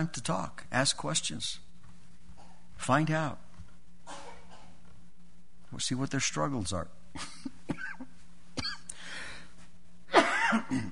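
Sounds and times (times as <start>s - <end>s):
speech: 0.0s - 1.6s, 2.8s - 3.4s, 5.7s - 7.4s
person with a lingering cough coughing: 4.1s - 4.8s, 8.6s - 8.9s, 10.1s - 10.8s.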